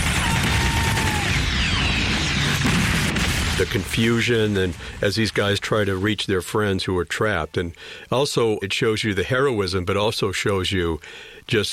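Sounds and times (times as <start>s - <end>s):
crackling gunfire from war film: 0.0s - 5.6s
rumbling blasts from war film: 0.0s - 6.6s
speech: 3.6s - 11.7s.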